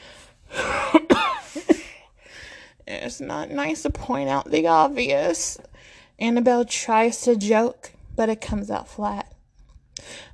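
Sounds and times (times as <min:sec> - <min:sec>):
old woman coughing in a short fit: 0:00.6 - 0:02.0
speech: 0:03.1 - 0:09.2.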